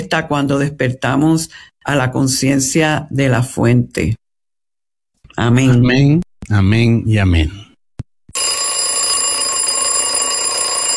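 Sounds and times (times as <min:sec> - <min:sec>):
speech: 0:00.0 - 0:04.2, 0:05.3 - 0:07.6
alarm clock ringing with metallic clatter: 0:08.4 - 0:10.9.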